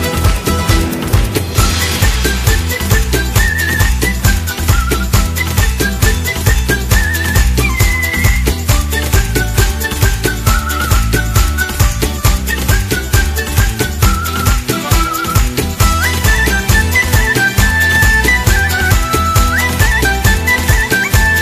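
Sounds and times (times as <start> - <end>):
loud busy band backing with a steady driving beat: 0.0 - 21.4
person whistling a high thin melody: 1.5 - 21.4.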